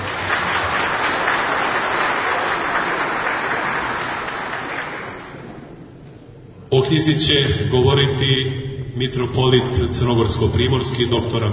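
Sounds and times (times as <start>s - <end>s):
audience applause at a book presentation: 0.0s - 5.7s
speech: 6.9s - 11.5s.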